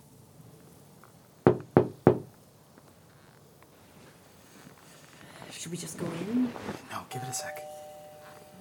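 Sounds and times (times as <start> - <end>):
sharp knocking: 1.5 - 2.3
speech: 5.6 - 7.8
phone ringtone electronic melody of stepping tones: 7.2 - 8.5.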